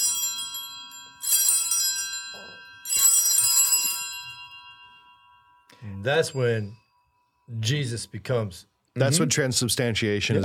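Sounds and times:
church bells rung at the elevation of the host during Mass: 0.0s - 6.6s
speech: 6.0s - 6.8s, 7.5s - 10.4s.

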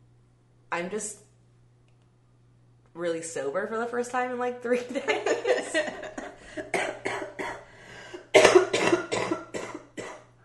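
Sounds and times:
speech: 0.8s - 1.3s, 3.0s - 6.9s
laughter: 4.8s - 6.7s
sick person coughing: 5.5s - 10.3s.

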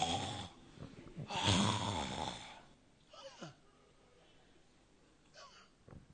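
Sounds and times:
man sitting down asleep snoring: 0.0s - 0.6s, 1.3s - 2.6s.

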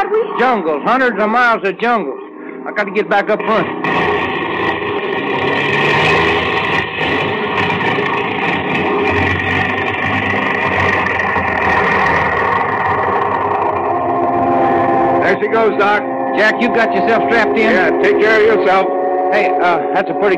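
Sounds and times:
airplane engine sputtering: 0.0s - 20.3s
speech: 0.4s - 4.0s, 15.4s - 20.3s.

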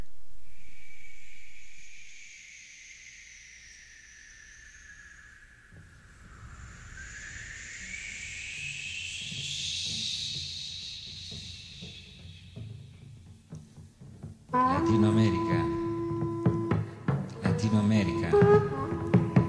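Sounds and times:
Latin American jazz music: 14.5s - 19.4s
long wavering high wind instrument tones: 14.5s - 19.4s.

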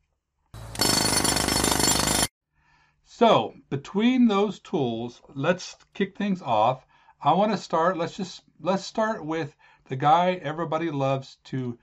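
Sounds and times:
loud jackhammer pounding: 0.6s - 2.3s
speech: 3.1s - 11.8s.

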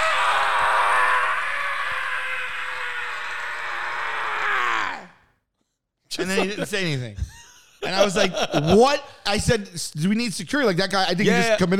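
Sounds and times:
man's voice imitating a man yelling from a balcony: 0.0s - 5.2s
laughter: 6.1s - 9.1s
speech: 6.2s - 11.7s.

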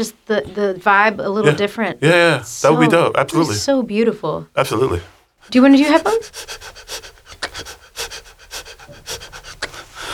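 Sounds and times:
speech: 0.0s - 7.0s
heavy rhythmic panting: 4.6s - 10.1s.

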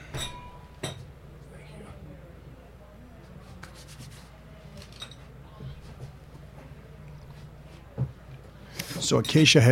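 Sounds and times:
wine glass clinking against a hard surface: 0.1s - 1.1s
speech: 9.1s - 9.6s.

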